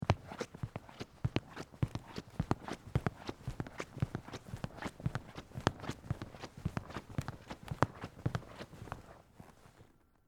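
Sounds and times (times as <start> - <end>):
footsteps walking across wooden theatre stage floor: 0.0 - 9.9.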